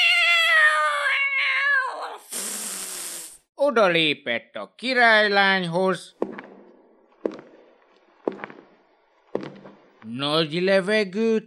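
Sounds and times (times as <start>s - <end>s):
cat yowling after its tail is stepped on: 0.0s - 2.2s
cat hissing: 2.1s - 3.4s
speech: 3.7s - 6.4s, 10.2s - 11.4s.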